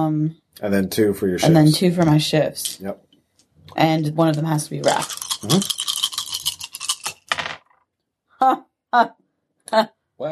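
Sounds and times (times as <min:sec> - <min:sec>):
speech: 0:00.0 - 0:03.1, 0:03.7 - 0:05.8, 0:08.4 - 0:10.3
dice rolled across a table: 0:04.4 - 0:07.8.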